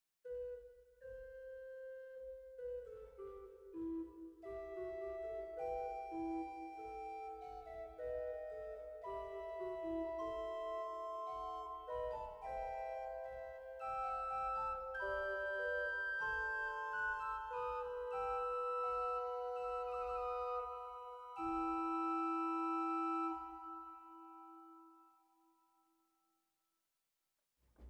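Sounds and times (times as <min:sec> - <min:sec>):
Rugwerk Fluit 4 organ flute stop: 0:02.6 - 0:24.9.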